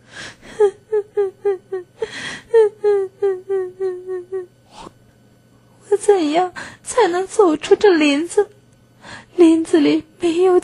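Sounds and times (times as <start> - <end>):
little girl crying in grief: 0.5 - 4.6
speech: 6.4 - 8.5, 9.4 - 10.6.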